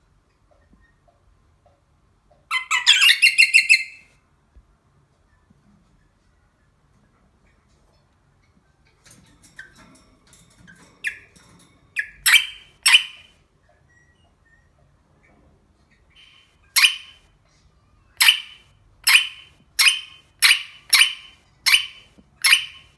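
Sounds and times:
rosella parrot voice: 0:02.5 - 0:04.0, 0:12.0 - 0:13.3, 0:16.2 - 0:17.2, 0:18.2 - 0:22.9.

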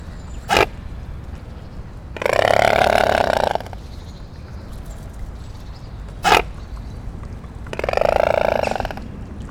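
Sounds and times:
mute swan hissing: 0:00.4 - 0:01.0, 0:02.1 - 0:03.8, 0:06.2 - 0:06.6, 0:07.8 - 0:09.0.

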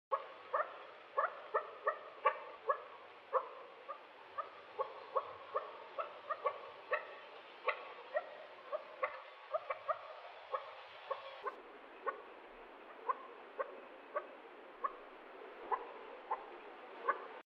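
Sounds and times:
quail voice: 0:00.1 - 0:17.4.

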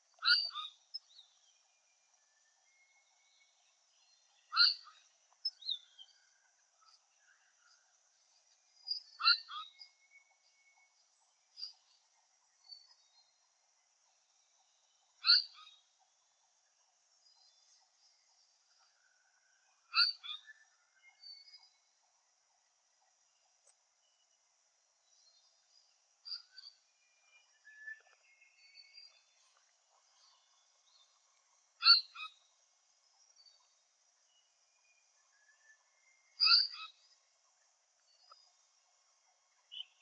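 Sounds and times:
paradise flycatcher voice: 0:00.1 - 0:07.8, 0:08.8 - 0:13.4, 0:14.5 - 0:16.0, 0:19.8 - 0:21.8, 0:25.0 - 0:32.5, 0:33.1 - 0:37.2, 0:39.5 - 0:40.0.

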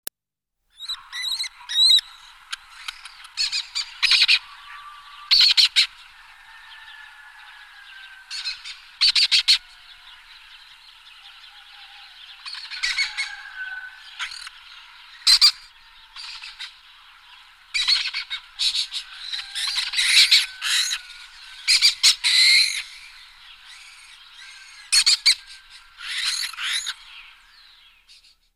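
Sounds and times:
lesser kestrel calling: 0:00.8 - 0:28.4.

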